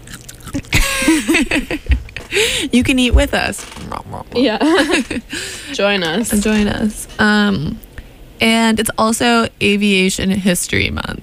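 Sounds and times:
crunching while eating kale: 0.0s - 1.0s
laughter: 0.7s - 2.6s, 4.4s - 5.7s
speech: 2.6s - 7.8s, 8.4s - 11.2s
voiced murmur: 3.8s - 6.9s.

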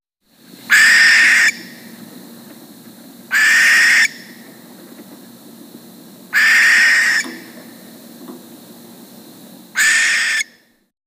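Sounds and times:
barn owl harsh hissing screeches: 0.7s - 1.9s, 3.3s - 4.4s, 6.3s - 7.6s, 9.7s - 10.7s.

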